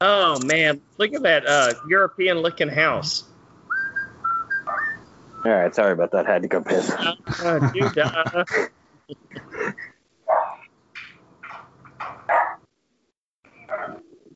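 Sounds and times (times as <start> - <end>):
speech: 0.0 - 3.3, 5.4 - 9.9
laughter: 6.3 - 9.9
big German Shepherd barking: 10.3 - 10.6, 12.3 - 12.6, 13.7 - 14.0.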